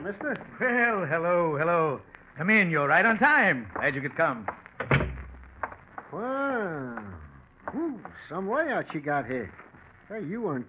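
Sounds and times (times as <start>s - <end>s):
speech: 0.0s - 4.6s, 6.1s - 10.6s
door opening with a dull thunk: 4.8s - 5.4s.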